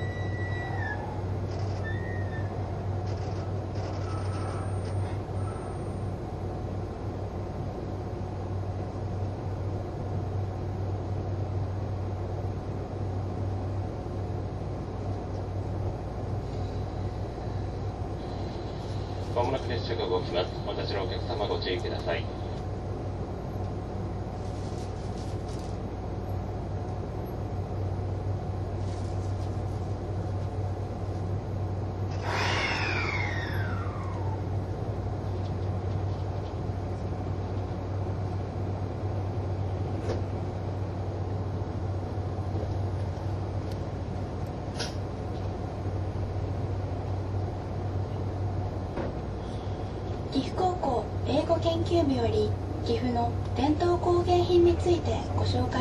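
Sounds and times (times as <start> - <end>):
low engine drone of a moving HC85 series hybrid express train: 0.0 - 55.7
speech: 19.5 - 22.4.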